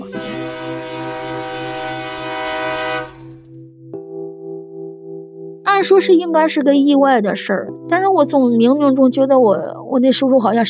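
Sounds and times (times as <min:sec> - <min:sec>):
train horn blast: 0:00.0 - 0:03.4
speech: 0:05.8 - 0:10.6.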